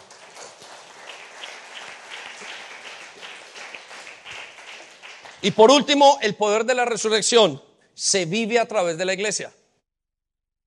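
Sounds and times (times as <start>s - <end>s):
crowd clapping in a large room: 0.0s - 6.0s
speech: 5.4s - 9.6s.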